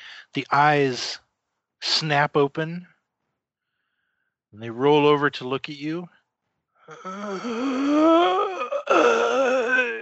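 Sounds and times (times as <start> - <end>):
speech: 0.3 - 1.2, 1.8 - 2.9, 4.5 - 6.2, 6.9 - 9.4
human voice imitating a corpse groaning: 6.9 - 10.0.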